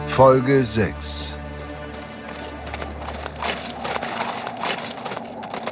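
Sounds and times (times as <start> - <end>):
speech: 0.2 - 1.4
horses' hooves galloping: 1.4 - 5.7.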